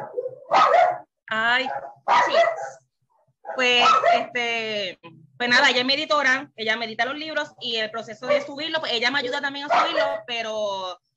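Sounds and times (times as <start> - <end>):
small dogs barking and yapping: 0.0 - 4.4, 8.2 - 8.6, 9.6 - 10.3
speech: 1.3 - 2.8, 3.5 - 11.0.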